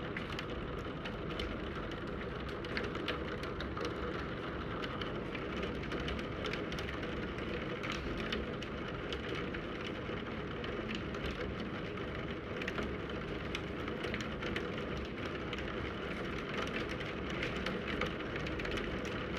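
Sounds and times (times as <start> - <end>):
rain pattering against a window: 0.0 - 19.3.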